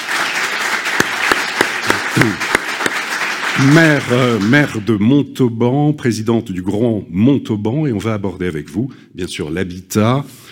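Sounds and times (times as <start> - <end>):
crowd applauding: 0.0 - 4.9
speech: 2.2 - 2.5, 3.6 - 10.5.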